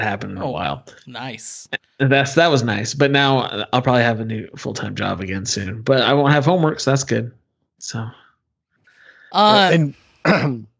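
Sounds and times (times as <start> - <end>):
speech: 0.0 - 8.2, 9.3 - 10.7
throat clearing: 10.2 - 10.7.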